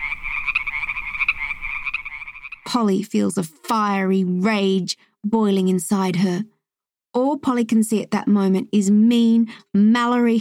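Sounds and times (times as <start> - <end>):
toads escaping across a classroom croaking: 0.0 - 2.8
speech: 2.7 - 6.5, 7.2 - 10.3.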